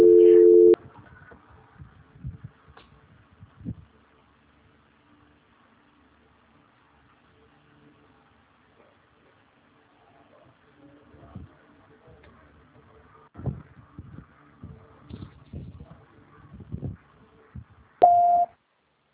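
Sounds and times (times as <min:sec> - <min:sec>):
telephone call transfer tone: 0:00.0 - 0:00.8, 0:18.0 - 0:18.5.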